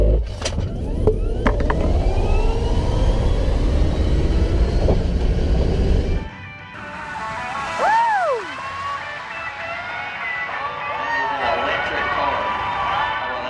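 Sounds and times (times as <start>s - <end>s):
road rumble inside an electric car: 0.0s - 9.4s
Tesla electric car motor whine heard from inside: 0.6s - 7.3s
open-air crowd ambience in speedway stands: 6.6s - 13.4s.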